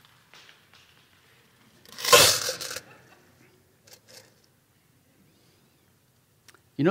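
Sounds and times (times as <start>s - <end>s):
coins dropping into a church offering: 1.9s - 2.9s.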